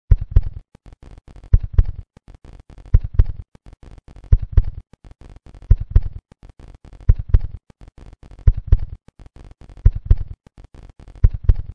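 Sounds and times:
heart knocking: 0.1s - 0.6s, 1.5s - 2.0s, 2.9s - 3.4s, 4.3s - 4.8s, 5.7s - 6.2s, 7.1s - 7.6s, 8.5s - 9.0s, 9.8s - 10.4s, 11.2s - 11.7s.

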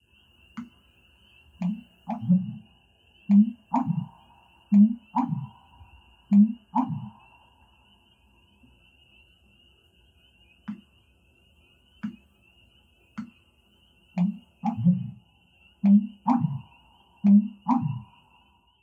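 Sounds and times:
Eurasian bittern: 1.6s - 2.6s, 3.3s - 7.3s, 14.2s - 15.2s, 15.8s - 18.1s.

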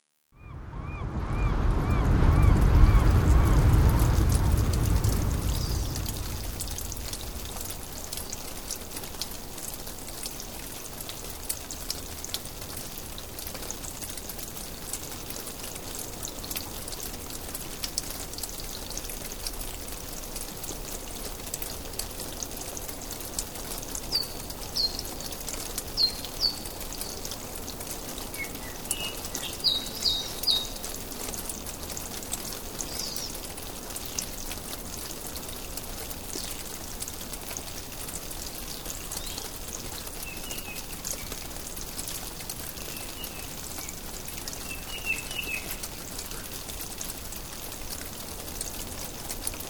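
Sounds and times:
nature ambience: 0.4s - 13.5s, 21.2s - 47.5s.

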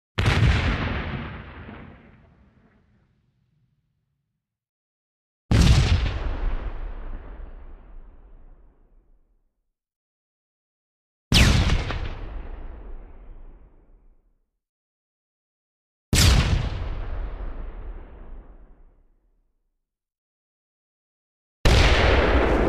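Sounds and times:
grenade explosion with echo: 0.2s - 3.6s, 5.5s - 8.4s, 11.3s - 13.8s, 16.2s - 18.9s, 21.7s - 22.6s.

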